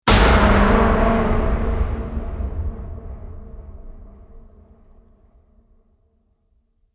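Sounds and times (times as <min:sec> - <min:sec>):
metal hit: 0:00.0 - 0:05.4.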